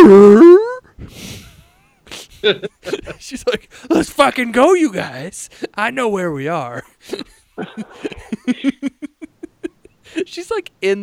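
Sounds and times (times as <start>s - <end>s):
person imitating a dog barking: 0.0s - 0.8s
speech: 0.1s - 0.3s, 2.4s - 9.1s, 10.1s - 11.0s.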